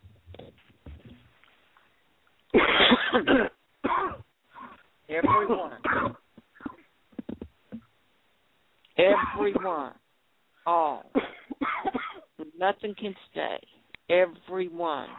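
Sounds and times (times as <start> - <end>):
people coughing: 2.6 - 6.9, 9.1 - 9.8, 11.2 - 12.3
speech: 3.2 - 3.6, 10.6 - 11.1, 12.6 - 15.1.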